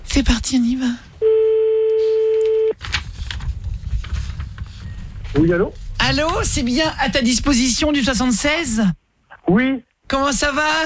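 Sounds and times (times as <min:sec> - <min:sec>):
speech: 0:00.2 - 0:01.3, 0:05.4 - 0:10.8
telephone dial tone: 0:01.2 - 0:02.8
rustling: 0:02.2 - 0:07.8.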